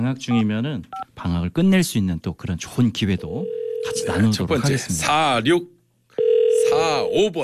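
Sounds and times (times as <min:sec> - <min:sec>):
speech: 0:00.0 - 0:07.4
telephone ringback tone during an outgoing call on live radio: 0:03.4 - 0:04.2, 0:06.2 - 0:07.2.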